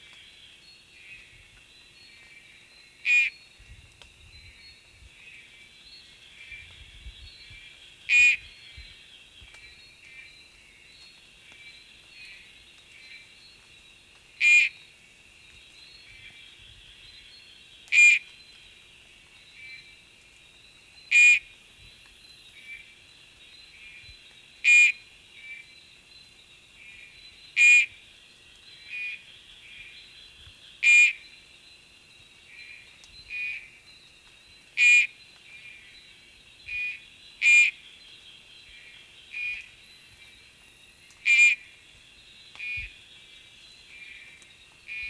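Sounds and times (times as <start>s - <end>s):
Oreophryne inornata calling: 3.0s - 3.4s, 8.1s - 8.6s, 14.4s - 14.8s, 17.9s - 18.3s, 21.1s - 21.5s, 24.6s - 25.7s, 26.8s - 28.0s, 28.9s - 30.0s, 30.8s - 31.4s, 32.5s - 33.8s, 34.8s - 35.9s, 36.7s - 37.9s, 39.3s - 39.8s, 41.2s - 41.8s, 42.5s - 43.0s, 43.9s - 45.0s.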